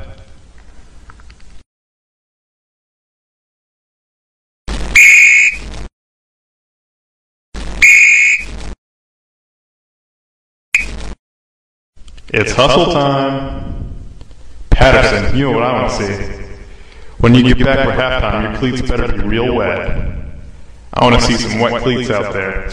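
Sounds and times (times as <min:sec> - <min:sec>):
coach's whistle blasts at football practice: 0:05.0 - 0:05.6, 0:07.8 - 0:08.5
speech: 0:12.3 - 0:13.6, 0:14.8 - 0:16.4, 0:17.2 - 0:20.1, 0:21.0 - 0:22.7.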